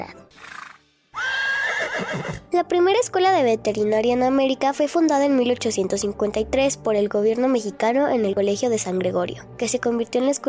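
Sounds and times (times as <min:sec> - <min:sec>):
horse whinnying: 0:00.4 - 0:02.5
speech: 0:02.5 - 0:10.4.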